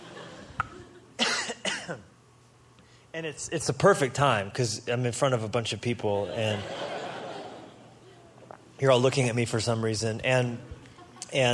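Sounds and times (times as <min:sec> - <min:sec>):
laughter: 0:00.0 - 0:01.1, 0:06.2 - 0:08.3
short coughs: 0:01.2 - 0:02.1
speech: 0:01.9 - 0:02.1, 0:03.1 - 0:06.9, 0:08.8 - 0:11.5.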